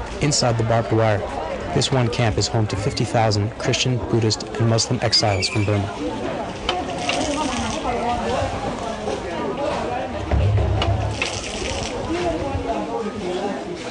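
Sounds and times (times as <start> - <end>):
indistinct voices murmuring: 0.0 - 13.8
speech: 0.2 - 6.4
well water pouring into old metal petrol cans: 6.8 - 8.1, 11.1 - 12.1.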